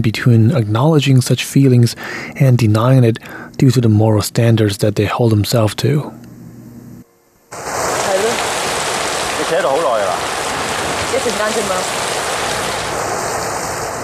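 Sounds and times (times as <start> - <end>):
speech: 0.0 - 6.2, 11.2 - 12.2
heavy rain pouring in a film scene: 7.5 - 14.0.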